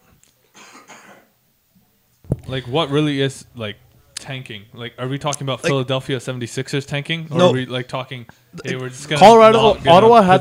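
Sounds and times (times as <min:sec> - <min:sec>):
harsh breathy coughs: 0:00.5 - 0:01.4
speech: 0:02.5 - 0:10.4.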